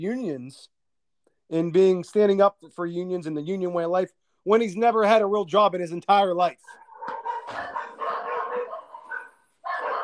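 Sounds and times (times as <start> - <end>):
speech: 0.0 - 0.8, 1.5 - 7.7
several dogs barking and yipping: 6.6 - 10.0.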